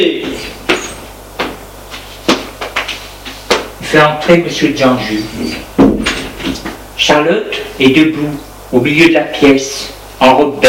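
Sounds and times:
speech: 0:03.9 - 0:05.7, 0:07.0 - 0:10.6
servant knocking on a door: 0:05.8 - 0:06.2.

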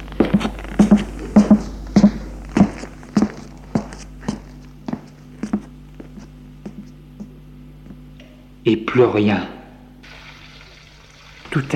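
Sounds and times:
footsteps at an even walking pace: 0:00.0 - 0:08.0
speech: 0:08.7 - 0:09.6, 0:11.6 - 0:11.7.

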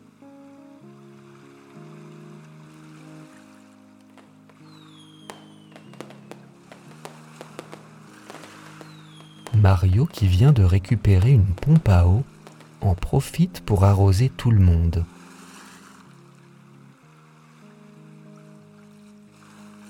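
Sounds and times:
gentle steady music: 0:00.0 - 0:19.8
whistling fireworks shooting up and crackling: 0:04.1 - 0:13.9
speech: 0:09.6 - 0:15.1.

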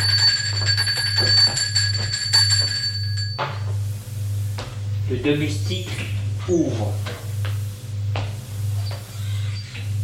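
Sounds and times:
doorbell ringing with a sustained electric tone: 0:00.0 - 0:03.7
low hum: 0:00.0 - 0:10.0
speech: 0:05.2 - 0:07.1.

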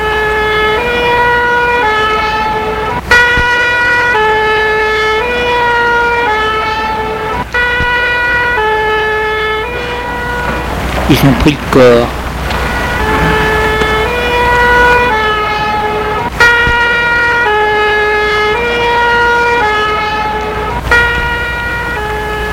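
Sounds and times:
two-tone fire engine siren: 0:00.0 - 0:22.5
speech: 0:11.1 - 0:12.2
brief knocks: 0:12.5 - 0:14.3.

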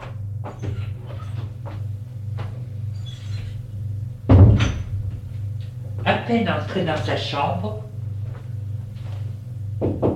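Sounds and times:
steady low hum: 0:00.0 - 0:10.1
speech: 0:06.3 - 0:07.9
firm knocking on a bedroom door: 0:09.8 - 0:10.1.

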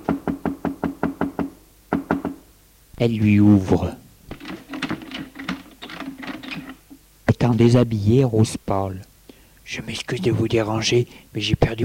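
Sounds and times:
knocking on a bedroom door: 0:00.0 - 0:02.4
speech: 0:03.0 - 0:04.0, 0:07.5 - 0:09.1, 0:09.7 - 0:11.8.

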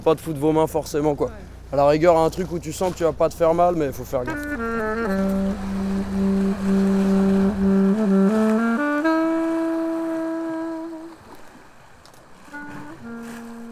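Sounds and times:
speech: 0:00.0 - 0:05.3
Perkins boat engine running: 0:00.0 - 0:11.4, 0:12.3 - 0:13.7.

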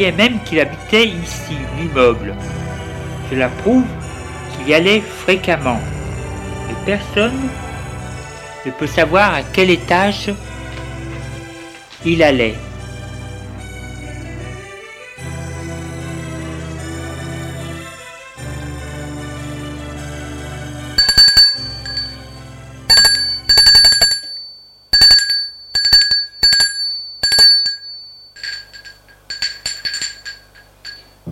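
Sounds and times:
speech: 0:00.0 - 0:02.7, 0:03.3 - 0:04.0, 0:04.6 - 0:06.0, 0:06.7 - 0:07.6, 0:08.6 - 0:10.5, 0:12.0 - 0:12.7
apartment doorbell ringing in bright metallic chimes: 0:21.0 - 0:31.2.

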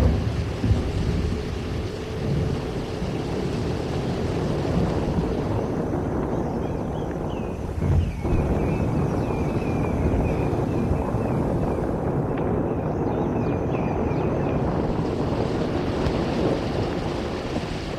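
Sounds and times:
rain hissing: 0:00.0 - 0:12.7, 0:14.6 - 0:17.9
deep continuous rolling thunder: 0:00.0 - 0:17.9
wind: 0:00.0 - 0:17.9.

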